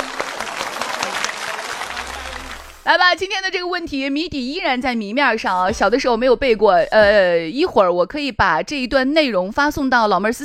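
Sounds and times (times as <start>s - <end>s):
applause for children who completed a puzzle challenge: 0.0s - 2.9s
speech: 2.9s - 10.4s.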